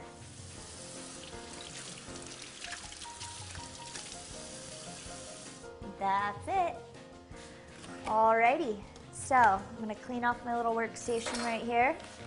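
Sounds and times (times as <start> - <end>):
cold tap water running and splashing: 0.2 - 5.6
water spattering as shellfish is rinsed: 0.8 - 5.5
speech: 6.0 - 6.8, 8.1 - 12.2.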